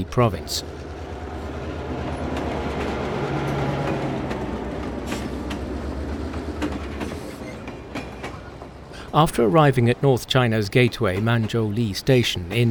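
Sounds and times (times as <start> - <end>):
speech: 0.0 - 0.8, 9.2 - 12.6
heavy freight train rumbling slowly along the rails: 0.0 - 12.6
metallic clanks and clicks from freight wagons: 2.1 - 9.4, 10.6 - 12.6.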